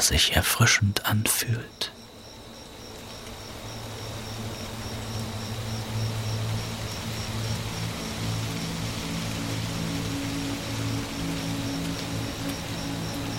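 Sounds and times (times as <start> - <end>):
speech: 0.0 - 2.0
gentle rain falling: 0.0 - 13.3
high insect whine: 0.0 - 13.3.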